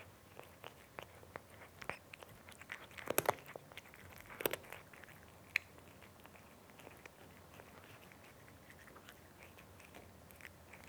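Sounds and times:
cat eating crunchy food: 0.3 - 10.8.

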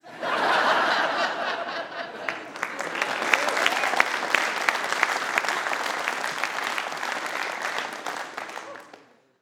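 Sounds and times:
theater audience laughing: 0.0 - 9.0.

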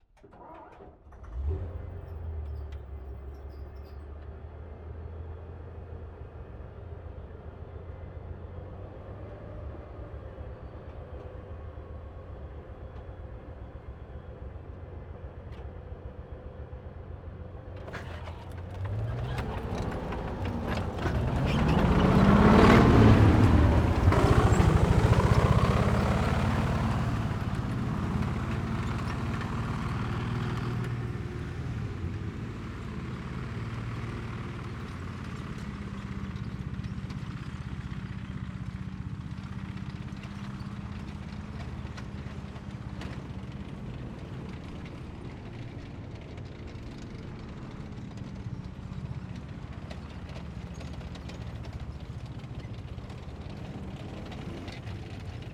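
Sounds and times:
tank exterior tracks moving fast then stopping: 17.8 - 55.5.

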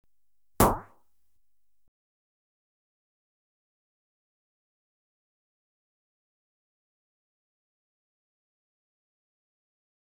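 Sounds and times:
electronically generated pump action rifle single shot: 0.6 - 0.9.

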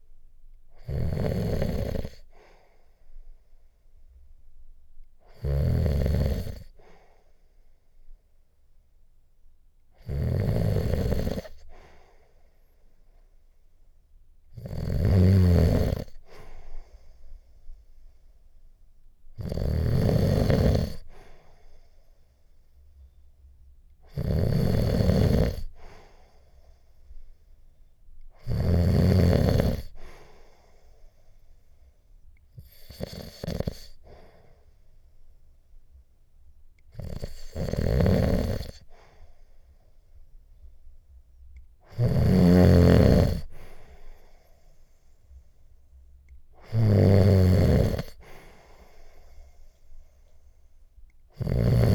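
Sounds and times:
man snoring in sleep: 0.8 - 2.2, 5.3 - 6.7, 10.0 - 11.6, 14.6 - 16.2, 19.4 - 21.1, 24.1 - 25.8, 28.4 - 30.1, 32.6 - 34.0, 37.0 - 38.8, 41.9 - 43.6, 46.6 - 48.5, 51.4 - 51.9.

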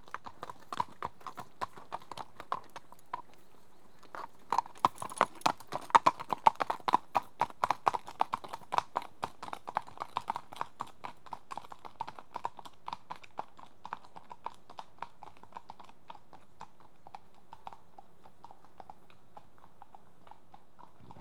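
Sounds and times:
two horses' hooves clopping at walk on tarmac: 0.0 - 21.1.

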